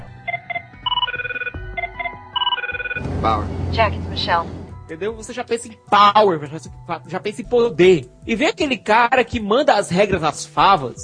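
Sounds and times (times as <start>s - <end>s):
telephone ringing with rapid electronic warble: 0.2s - 3.0s
speech: 3.2s - 11.0s.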